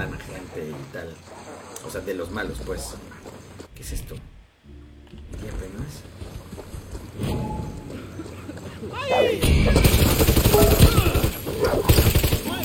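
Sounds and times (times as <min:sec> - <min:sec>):
speech: 0:00.0 - 0:04.4, 0:05.3 - 0:06.4
rapid video game gunfire: 0:09.4 - 0:12.6.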